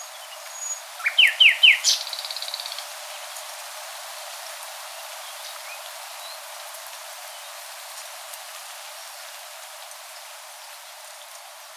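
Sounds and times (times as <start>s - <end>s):
common nightingale Luscinia megarhynchos song with whistles and sharp notes: 0.0s - 2.7s.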